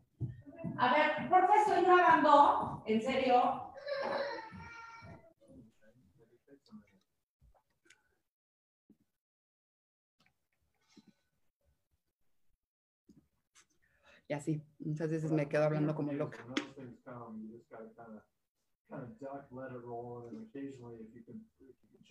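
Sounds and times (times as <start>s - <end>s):
speech: 0.8s - 4.2s, 14.3s - 18.3s, 18.9s - 22.0s
children's faint scattered whimpers: 3.8s - 5.1s
children crying loudly: 3.8s - 5.4s.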